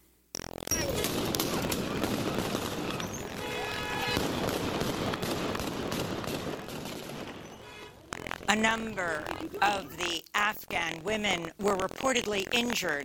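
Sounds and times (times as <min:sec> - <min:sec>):
rifle gunfire fired into the air by soldiers in Afghanistan: 0:00.9 - 0:07.8
chaotic crowd of women protesters shouting in Afghanistan: 0:01.5 - 0:04.6
speech: 0:08.5 - 0:13.0.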